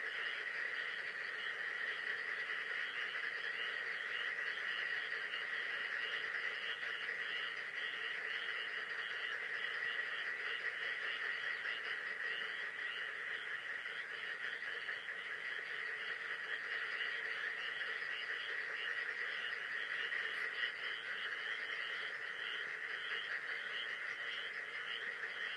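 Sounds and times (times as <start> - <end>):
frog chorus: 0.0 - 25.5.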